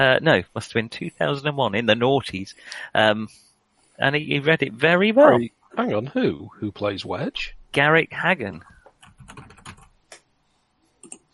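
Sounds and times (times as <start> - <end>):
speech: 0.0 - 8.7
fast typing on a computer keyboard: 8.9 - 9.9.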